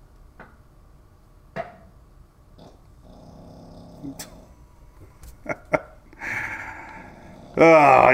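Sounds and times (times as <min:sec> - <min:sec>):
dog snoring: 0:02.6 - 0:04.6, 0:06.4 - 0:08.1
speech: 0:04.0 - 0:04.4, 0:07.6 - 0:08.1.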